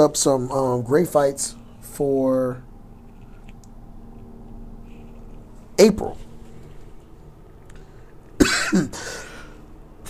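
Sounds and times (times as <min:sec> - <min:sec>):
speech: 0:00.0 - 0:02.7, 0:05.8 - 0:06.2, 0:08.7 - 0:09.2
man coughing: 0:08.4 - 0:09.5.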